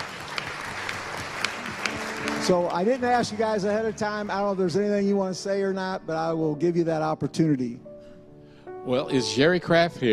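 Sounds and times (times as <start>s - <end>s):
church audience applauding: 0.0s - 5.2s
speech: 2.4s - 7.9s, 8.8s - 10.1s.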